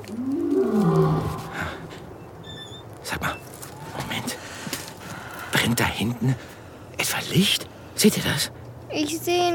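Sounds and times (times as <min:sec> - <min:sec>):
lion roaring: 0:00.1 - 0:02.0
speech: 0:05.8 - 0:09.5.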